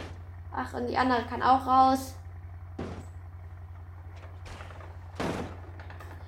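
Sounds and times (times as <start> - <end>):
steady low engine-like hum: 0.0 - 6.2
speech: 0.6 - 2.2
loud crunching thud: 2.7 - 3.3, 4.3 - 5.8
video game car door wrenched off with a heavy metallic clunk: 2.8 - 3.2, 4.3 - 6.0.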